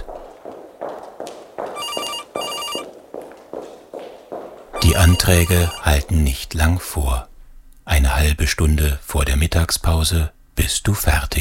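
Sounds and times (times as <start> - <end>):
high-heel footsteps clicking along a hard floor: 0.0 - 5.8
telephone ringing: 1.8 - 2.9, 4.8 - 6.0
speech: 5.1 - 7.3, 7.9 - 11.3.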